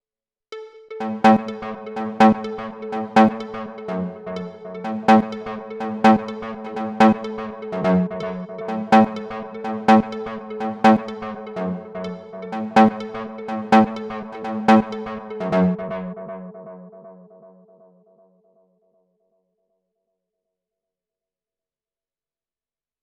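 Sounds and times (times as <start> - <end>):
melody with tape delay effect: 0.5 - 16.6.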